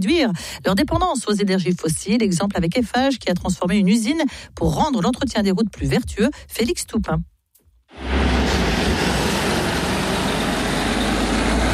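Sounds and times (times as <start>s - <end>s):
speech: 0.0s - 7.3s
heavy truck engine rumbling while driving away from a factory: 7.9s - 11.7s.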